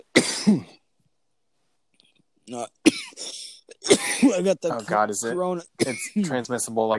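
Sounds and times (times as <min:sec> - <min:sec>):
person coughing harshly: 0:00.0 - 0:00.8, 0:02.9 - 0:04.8, 0:05.8 - 0:06.4
speech: 0:00.4 - 0:00.8, 0:02.5 - 0:06.9.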